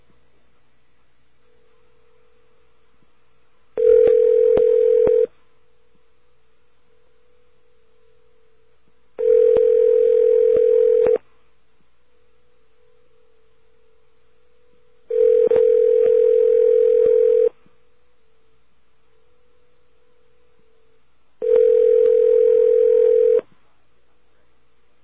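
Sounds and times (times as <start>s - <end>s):
telephone line tone while dialing a toll-free 800 number: 3.8s - 5.3s, 9.2s - 11.2s, 15.1s - 17.6s, 21.4s - 23.4s.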